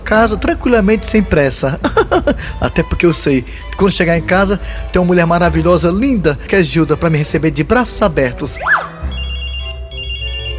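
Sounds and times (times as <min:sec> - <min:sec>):
speech: 0:00.1 - 0:08.9
laughter: 0:01.8 - 0:02.5
mobile phone ringing: 0:08.9 - 0:10.5.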